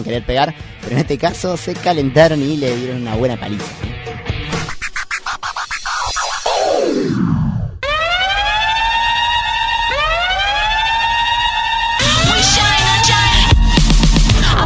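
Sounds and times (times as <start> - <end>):
speech: 0.0 - 3.9
rough scratchy noise: 4.5 - 7.6
emergency siren wailing: 5.9 - 13.6.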